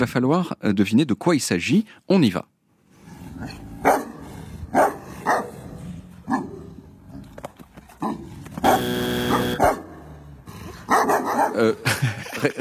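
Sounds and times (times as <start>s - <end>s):
speech: 0.0s - 2.5s, 3.4s - 4.1s, 11.6s - 12.5s
Tibetan Mastiff barking deep booming woofs: 3.8s - 5.6s, 6.3s - 6.7s, 8.0s - 10.0s, 10.8s - 11.6s
laughter: 11.7s - 12.5s.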